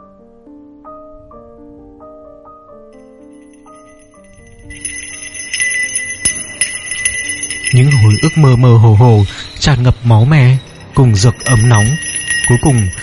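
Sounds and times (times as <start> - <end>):
small bell tinkling: 3.0 - 13.0
soft melodic chime-like notes: 3.0 - 13.0
speech: 7.7 - 13.0.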